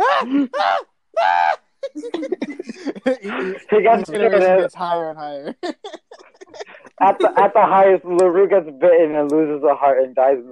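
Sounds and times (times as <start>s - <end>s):
man screaming in panic: 0.0s - 1.6s
speech: 0.2s - 6.0s, 6.6s - 10.5s
laughter: 1.8s - 4.6s, 5.5s - 8.1s
man chattering speech: 1.9s - 10.5s.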